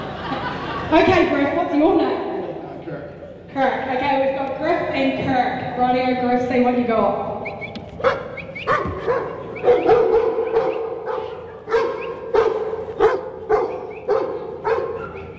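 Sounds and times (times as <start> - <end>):
laughter: 0.0 - 3.5, 7.4 - 15.3
speech: 0.9 - 2.3, 3.6 - 7.3
working dog barking and yipping: 7.6 - 15.3.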